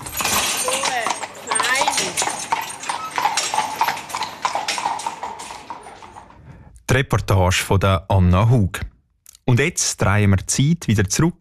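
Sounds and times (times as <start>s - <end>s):
horse hooves clip-clopping while pulling a loaded carriage: 0.0s - 6.4s
speech: 7.0s - 8.9s, 9.5s - 11.3s.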